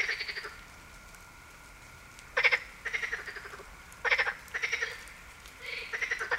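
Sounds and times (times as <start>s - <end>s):
marsh frog croaking: 0.0s - 0.6s, 2.4s - 6.3s.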